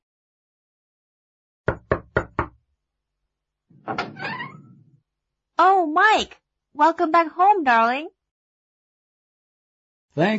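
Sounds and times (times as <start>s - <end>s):
firm knocks on a home's door: 1.7s - 2.6s
door creaking and scraping as a woman opens it: 3.7s - 5.0s
speech: 3.9s - 4.4s, 5.6s - 8.2s, 10.2s - 10.3s.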